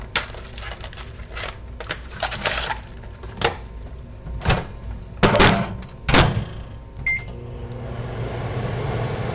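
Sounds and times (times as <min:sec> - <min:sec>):
microwave oven running with a low hum: 0:03.1 - 0:09.3.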